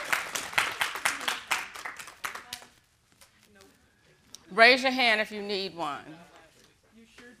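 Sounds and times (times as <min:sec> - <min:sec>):
small group of people clapping: 0:00.0 - 0:02.9
speech: 0:04.6 - 0:06.3.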